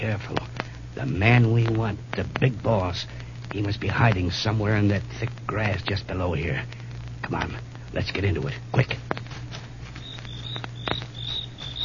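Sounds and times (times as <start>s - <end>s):
speech: 0.0s - 9.1s
low hum: 0.0s - 11.8s
soft clicks and rustles: 0.0s - 11.8s
crickets chirping in pulsing trills: 9.1s - 11.8s.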